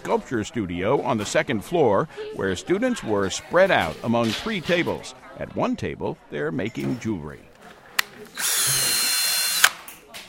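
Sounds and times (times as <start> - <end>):
speech: 0.0 - 7.5
small power drill drilling into hard plastic-like material: 8.2 - 9.8.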